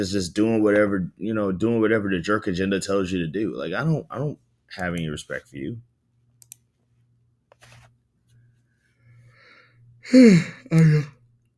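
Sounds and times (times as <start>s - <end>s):
speech: 0.0s - 5.9s, 10.1s - 11.2s
low hum: 0.0s - 11.5s
person yawning: 10.0s - 11.2s.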